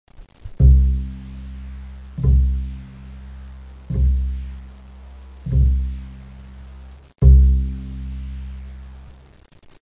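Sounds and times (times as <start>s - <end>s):
double bass playing note A: 0.6s - 9.3s.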